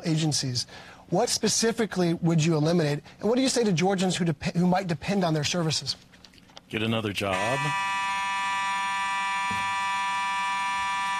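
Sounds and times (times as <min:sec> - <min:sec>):
speech: 0:00.0 - 0:08.0
fire alarm blaring steady electronic tone: 0:07.3 - 0:11.1.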